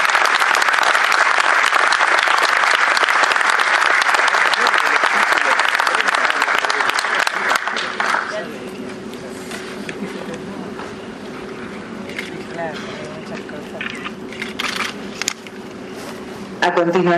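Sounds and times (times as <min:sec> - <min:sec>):
sizable audience applauding: 0:00.0 - 0:08.6
speech: 0:16.8 - 0:17.1.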